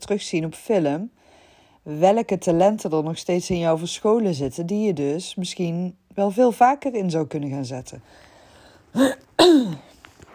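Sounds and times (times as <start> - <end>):
speech: 0.1 - 1.2, 1.8 - 8.3, 8.9 - 9.9
person coughing: 9.0 - 10.0.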